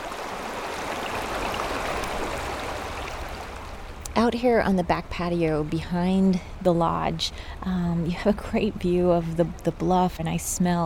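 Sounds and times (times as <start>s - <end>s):
flowing river water rushing and gurgling: 0.0s - 4.0s
speech: 4.2s - 10.8s.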